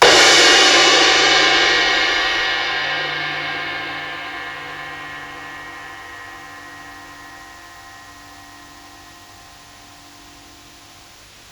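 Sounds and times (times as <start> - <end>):
crash on psychedelic drums: 0.0 - 8.5.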